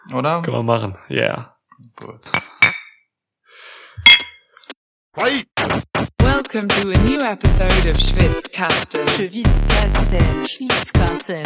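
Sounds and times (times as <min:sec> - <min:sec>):
speech: 0:00.1 - 0:01.5, 0:02.1 - 0:02.4, 0:05.2 - 0:05.9, 0:06.5 - 0:11.4
glasses clinking together in a toast: 0:02.3 - 0:03.0, 0:04.0 - 0:04.4.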